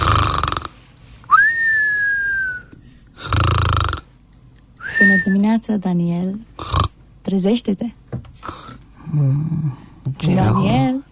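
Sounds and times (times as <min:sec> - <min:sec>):
person imitating snoring while pretending to sleep: 0:00.0 - 0:00.7, 0:03.2 - 0:04.1, 0:06.6 - 0:06.9, 0:09.0 - 0:10.9
whistled tone gliding down: 0:01.3 - 0:02.7
speech: 0:05.2 - 0:06.7, 0:07.3 - 0:11.0.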